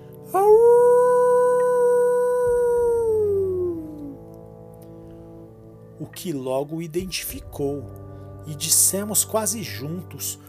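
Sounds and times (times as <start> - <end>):
long mournful howl: 0.3 - 4.2
speech: 6.2 - 10.4.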